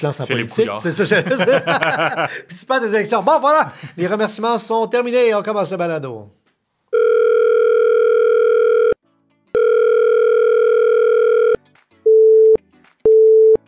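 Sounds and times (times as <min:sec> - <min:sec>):
laughter: 0:00.0 - 0:04.2
speech: 0:00.0 - 0:06.4
telephone ringback tones of an outgoing call: 0:06.9 - 0:09.0, 0:09.6 - 0:13.6.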